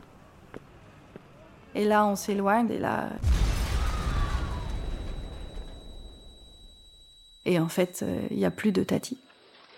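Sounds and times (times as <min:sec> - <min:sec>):
speech: 0:01.8 - 0:03.4, 0:07.5 - 0:09.2
heavy deep explosion boom with rumbling roar: 0:03.2 - 0:06.3
thin high ringing tone: 0:03.8 - 0:09.7.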